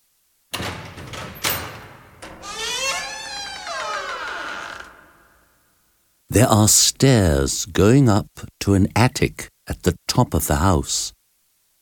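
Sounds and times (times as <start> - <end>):
metallic clicks of a door lock unlocked with a key: 0.5 - 3.1
creaking hinge squeal of a door swinging open: 0.5 - 5.6
speech: 6.3 - 11.2.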